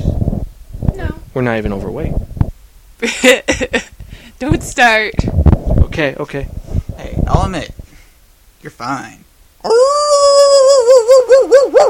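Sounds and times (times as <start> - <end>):
speech: 1.4 - 2.3, 3.0 - 5.3, 5.9 - 7.8, 8.6 - 10.1, 10.9 - 11.8
dog howling whine: 9.7 - 11.8.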